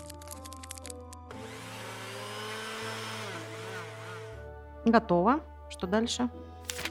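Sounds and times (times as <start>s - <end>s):
clicks and rattles: 0.0s - 1.3s
electric mixer whisking crêpe batter: 1.3s - 4.5s
speech: 4.9s - 6.5s.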